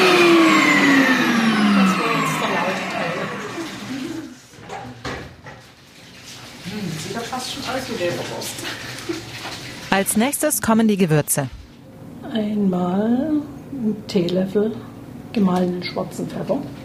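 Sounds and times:
electric meat grinder motor in a cold store switched off: 0.0s - 4.4s
speech: 10.0s - 11.6s, 12.4s - 16.8s.

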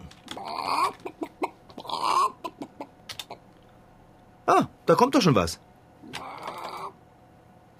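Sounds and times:
chicken squawking: 0.3s - 3.5s, 6.1s - 7.0s
chicken clucking: 0.6s - 3.4s
speech: 4.5s - 5.7s.

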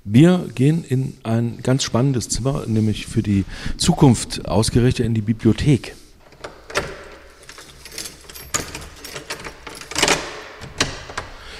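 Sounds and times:
speech: 0.0s - 6.0s
old key clicking and rattling in an old castle lock: 6.2s - 11.5s.

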